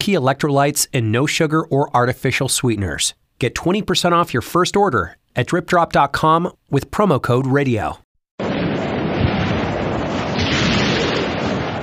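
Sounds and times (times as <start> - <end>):
speech: 0.0 - 8.0
gusty wind: 8.4 - 11.8
thunder rumbling: 8.4 - 11.8.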